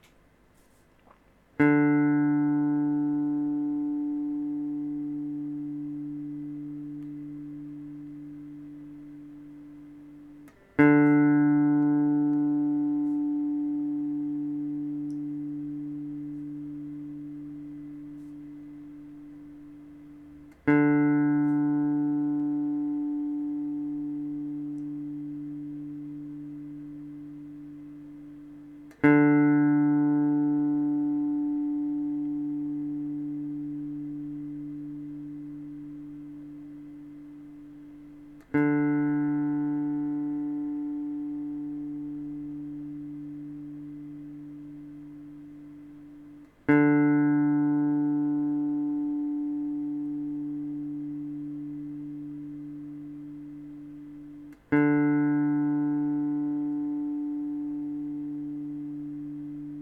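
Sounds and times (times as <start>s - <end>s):
electric guitar fourth string D plucked for tuning: 1.6s - 59.7s.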